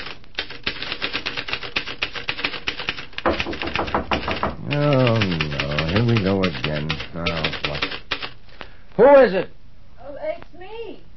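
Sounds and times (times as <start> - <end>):
manual typewriter keys clattering: 0.0 - 8.4
speech: 6.4 - 7.5, 9.0 - 9.6.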